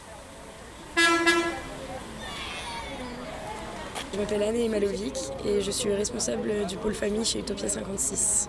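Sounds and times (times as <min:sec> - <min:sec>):
grey buses with tinted windows pulling in and parking: 0:00.0 - 0:07.4
vehicle horn honk: 0:01.0 - 0:01.7
speech: 0:04.1 - 0:08.4.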